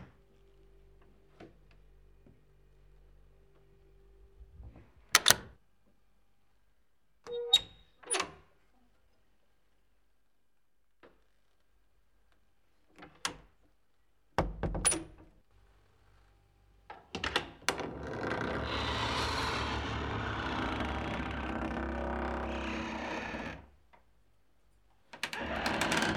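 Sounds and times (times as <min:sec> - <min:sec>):
door opening and closing: 0:04.6 - 0:05.6, 0:14.4 - 0:15.2, 0:17.2 - 0:23.8, 0:25.2 - 0:26.1.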